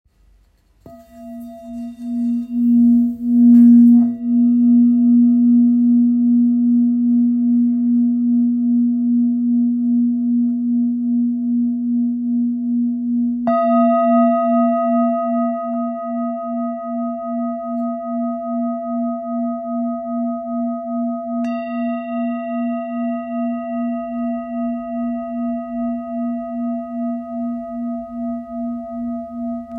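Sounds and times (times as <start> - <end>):
low singing bowl tone in A sharp: 0.9 - 29.7.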